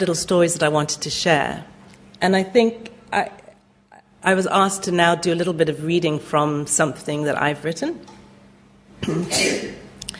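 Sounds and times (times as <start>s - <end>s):
speech: 0.0s - 3.4s, 4.2s - 8.2s, 9.0s - 9.7s
sneeze: 9.0s - 9.9s.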